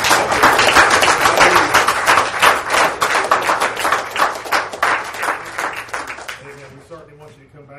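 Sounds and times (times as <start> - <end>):
church audience applauding: 0.0 - 6.7.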